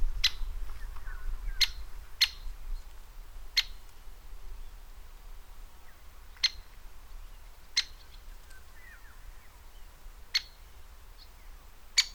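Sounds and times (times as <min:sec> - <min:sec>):
background hiss: 0:00.0 - 0:12.1
Great spotted woodpecker sharp kik calls: 0:00.2 - 0:02.5, 0:03.5 - 0:04.0, 0:05.8 - 0:12.1.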